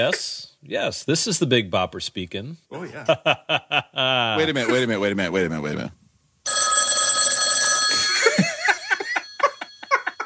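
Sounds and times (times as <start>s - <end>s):
speech: 0.0s - 6.0s
laughter: 3.0s - 4.2s, 7.9s - 10.2s
telephone ringing with an electronic trill: 6.4s - 10.2s.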